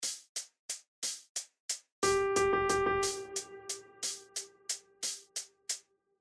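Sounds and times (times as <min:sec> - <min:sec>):
quarter note and four sixteenth notes in triplet rhythm pattern: 0:02.0 - 0:05.5.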